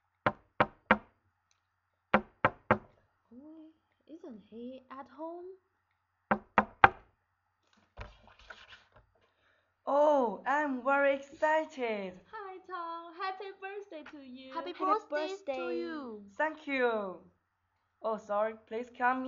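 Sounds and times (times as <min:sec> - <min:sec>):
sharp knocking on the door of a home: 0:00.3 - 0:01.1, 0:02.2 - 0:02.9, 0:06.3 - 0:07.0
speech: 0:04.1 - 0:05.7, 0:09.9 - 0:12.9, 0:14.0 - 0:17.4, 0:18.0 - 0:19.2
quiet shuffling: 0:07.6 - 0:09.3.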